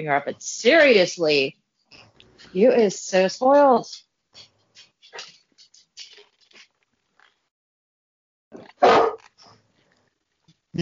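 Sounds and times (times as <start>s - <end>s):
speech: 0.0s - 4.5s
very large female dog barking: 8.8s - 9.2s.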